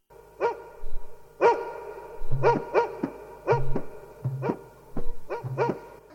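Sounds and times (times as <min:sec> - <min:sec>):
dog barking: 0:00.4 - 0:00.7, 0:01.4 - 0:03.8, 0:04.4 - 0:04.6, 0:05.3 - 0:05.8.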